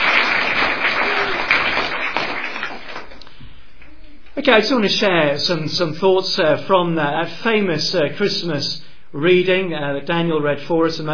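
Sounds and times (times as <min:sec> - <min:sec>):
crowd applauding for musicians: 0:00.0 - 0:03.3
speech: 0:04.4 - 0:11.1.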